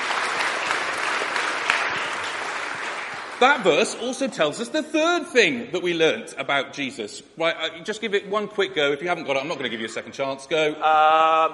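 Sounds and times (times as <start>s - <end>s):
audience applause: 0.0s - 4.2s
speech: 3.4s - 11.5s.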